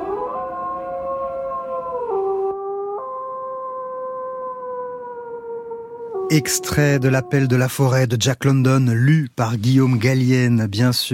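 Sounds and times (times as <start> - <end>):
wolves howling on a cold still night: 0.0 - 7.8
speech: 6.3 - 11.1.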